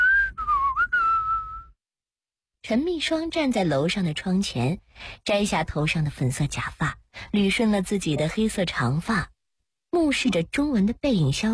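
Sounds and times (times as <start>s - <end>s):
loud human whistle: 0.0s - 1.7s
speech: 2.7s - 9.3s, 10.0s - 11.5s.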